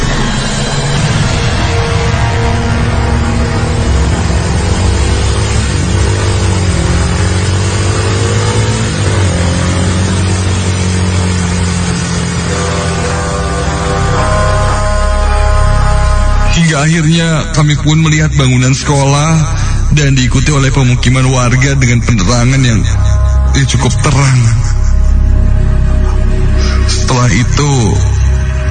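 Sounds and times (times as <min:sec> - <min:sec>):
car engine accelerating hard at full throttle: 0:00.0 - 0:28.6
speech: 0:16.8 - 0:24.8, 0:27.1 - 0:28.1.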